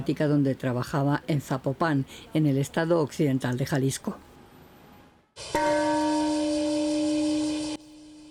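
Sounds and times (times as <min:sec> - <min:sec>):
speech: 0:00.0 - 0:04.3, 0:05.4 - 0:05.7
large peace bell struck at memorial ceremony: 0:05.6 - 0:07.7.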